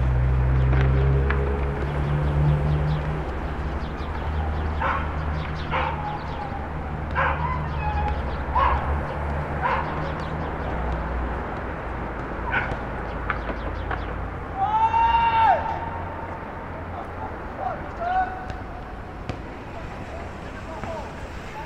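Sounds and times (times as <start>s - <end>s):
low rumble of traffic and machinery: 0.0s - 21.6s
voices: 0.0s - 21.6s
dogs barking: 4.3s - 10.9s, 12.3s - 13.2s.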